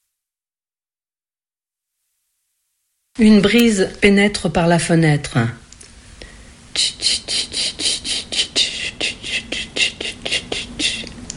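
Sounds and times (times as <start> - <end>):
speech: 3.2 - 5.6, 6.8 - 7.5
kumazemi cicada singing: 6.7 - 11.1.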